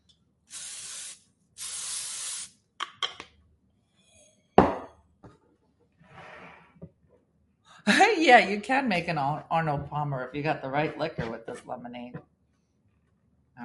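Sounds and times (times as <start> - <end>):
aerosol spray hissing: 0.5 - 2.6
speech: 7.9 - 12.3.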